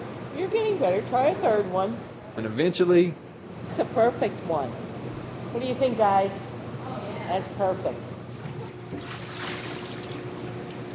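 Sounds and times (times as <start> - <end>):
speech: 0.4 - 4.8, 5.5 - 6.5, 7.3 - 8.1
water splashing while boiling pierogies: 8.4 - 10.9.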